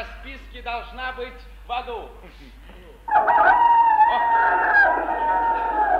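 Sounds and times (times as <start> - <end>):
speech: 0.0 - 5.4
rooster crowing: 3.1 - 5.9.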